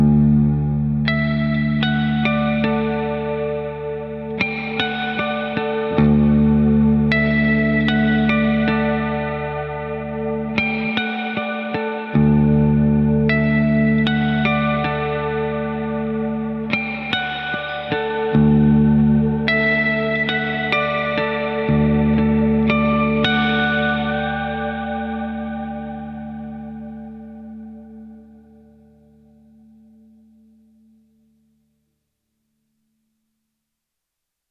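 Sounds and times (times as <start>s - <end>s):
ghostly harmonics: 0.2s - 30.1s.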